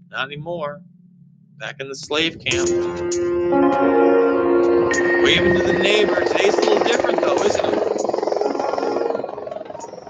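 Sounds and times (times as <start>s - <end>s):
speech: 0.1s - 0.9s, 1.6s - 7.8s
large drone flying overhead: 2.0s - 10.0s.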